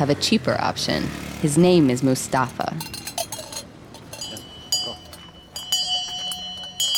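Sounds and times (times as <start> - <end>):
speech: 0.0 - 3.0
faint street chatter in a Moroccan city: 0.0 - 6.9
brass cups clinking on a water seller's satchel: 2.3 - 6.9
water seller's hand bell ringing in a Moroccan city: 2.8 - 6.9.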